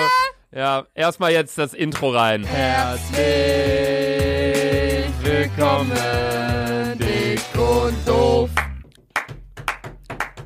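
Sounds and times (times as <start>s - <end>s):
speech: 0.5s - 8.6s
hands clapping: 8.5s - 10.4s.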